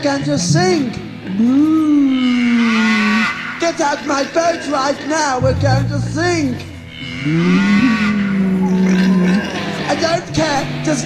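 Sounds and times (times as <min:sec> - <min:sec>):
speech: 0:00.0 - 0:02.4, 0:03.6 - 0:08.1, 0:09.9 - 0:11.0
cow mooing aboard a boat in a video game: 0:01.3 - 0:10.4.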